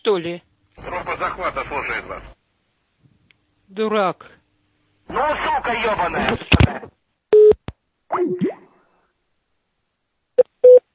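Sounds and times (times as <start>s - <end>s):
speech: 0.1s - 2.4s, 3.7s - 4.4s, 5.1s - 7.0s, 8.1s - 8.5s
telephone dialing beeps: 7.4s - 7.6s, 10.6s - 10.9s.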